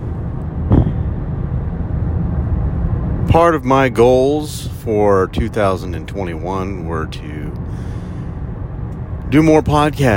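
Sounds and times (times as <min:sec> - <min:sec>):
car being driven before dawn, road and engine rumble: 0:00.0 - 0:10.1
speech: 0:03.4 - 0:08.0, 0:09.3 - 0:10.1.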